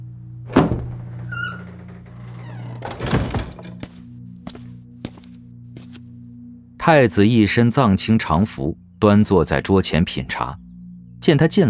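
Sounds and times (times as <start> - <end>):
low steady hum: 0.0 - 11.6
wooden door pushed open into a study in an ancient palace: 0.5 - 3.9
speech: 6.8 - 10.6, 11.2 - 11.6.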